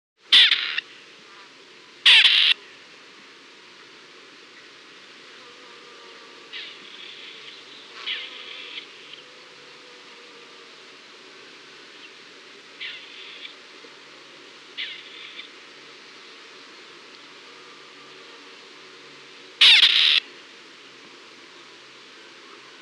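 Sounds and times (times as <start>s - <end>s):
Perdix perdix calling: 0.3s - 0.8s, 2.1s - 2.6s, 19.6s - 20.2s.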